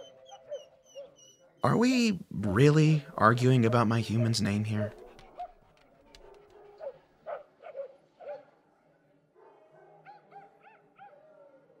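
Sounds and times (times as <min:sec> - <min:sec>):
dogs barking: 0:00.0 - 0:01.6, 0:03.2 - 0:08.6, 0:09.4 - 0:11.7
dogs whimpering: 0:00.0 - 0:01.6, 0:03.5 - 0:07.9
speech: 0:01.6 - 0:05.0.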